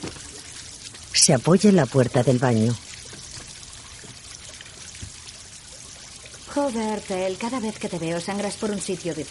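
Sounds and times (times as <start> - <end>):
tap water running in a bathroom sink while washing a bleeding wound: 0.0 - 9.3
speech: 1.2 - 2.8, 6.6 - 9.3.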